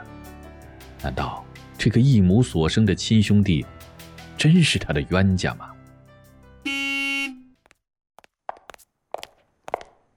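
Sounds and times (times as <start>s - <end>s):
speech: 1.0s - 3.8s, 4.4s - 5.7s
car horn blast: 6.6s - 7.5s
footsteps: 7.7s - 10.1s.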